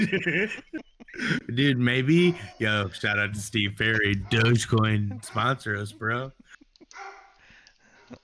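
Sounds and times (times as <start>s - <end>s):
speech: 0.0s - 6.4s
laughter: 0.0s - 6.9s
dogs yipping and whining excitedly: 2.1s - 2.9s, 4.1s - 4.6s, 6.8s - 7.4s.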